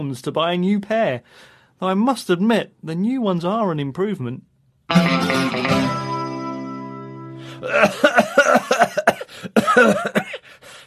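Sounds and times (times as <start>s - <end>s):
speech: 0.0s - 6.0s, 7.4s - 10.8s
person coughing harshly: 7.6s - 10.6s.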